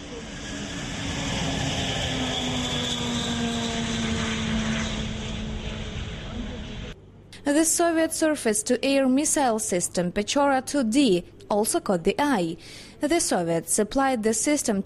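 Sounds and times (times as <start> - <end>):
world's heaviest and largest cargo aircraft flying at an international air show in Kyiv: 0.0 - 7.0
speech: 7.4 - 14.8.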